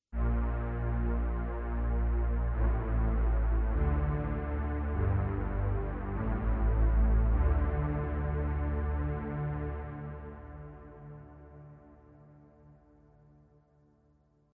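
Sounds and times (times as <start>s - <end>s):
sub bass: 0.1s - 11.4s.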